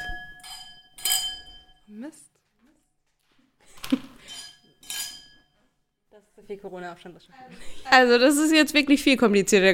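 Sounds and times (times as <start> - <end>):
glasses clinking during a toast: 0.0 - 1.9, 4.2 - 5.7
speech: 2.1 - 2.4, 6.5 - 9.7.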